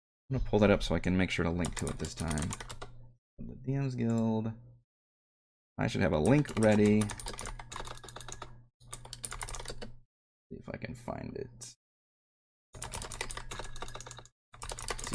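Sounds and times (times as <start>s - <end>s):
speech: 0.3s - 2.8s, 3.4s - 4.7s, 5.8s - 7.4s, 10.7s - 11.8s
computer keyboard typing: 1.6s - 3.0s, 6.2s - 10.0s, 12.8s - 15.1s.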